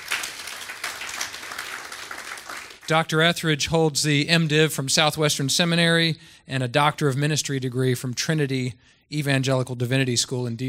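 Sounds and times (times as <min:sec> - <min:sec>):
audience applause at a church gathering: 0:00.0 - 0:02.9
speech: 0:02.9 - 0:10.6.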